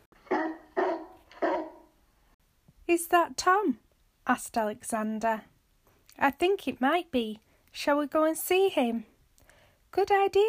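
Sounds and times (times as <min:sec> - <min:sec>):
dog barking: 0:00.2 - 0:02.0
speech: 0:02.9 - 0:05.5, 0:06.2 - 0:09.1, 0:09.9 - 0:10.4.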